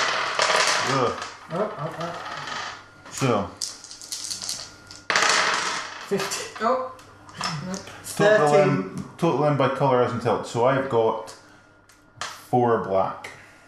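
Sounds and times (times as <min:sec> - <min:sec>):
black and white dice clattering on a hard tabletop: 0:00.0 - 0:01.4, 0:03.6 - 0:06.4
speech: 0:00.9 - 0:02.5, 0:03.2 - 0:03.6, 0:06.1 - 0:11.4, 0:12.5 - 0:13.3.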